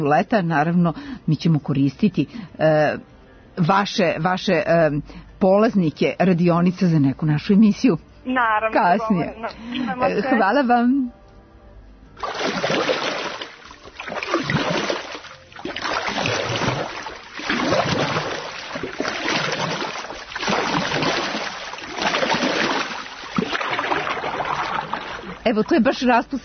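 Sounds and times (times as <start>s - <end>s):
speech: 0.0s - 11.2s, 25.5s - 26.4s
rowing oars splashing in water in Kraljevo Serbia: 12.2s - 26.4s.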